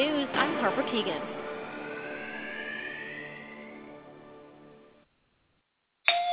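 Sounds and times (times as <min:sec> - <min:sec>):
loud tone: 0:00.0 - 0:05.0
speech: 0:00.7 - 0:01.5
doorbell chime: 0:06.1 - 0:06.3.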